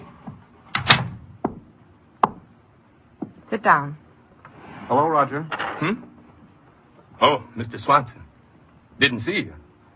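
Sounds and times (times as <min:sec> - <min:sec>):
office door swinging shut: 0:00.7 - 0:01.2
speech: 0:03.5 - 0:04.0, 0:04.9 - 0:06.1, 0:07.2 - 0:08.2, 0:09.0 - 0:09.6.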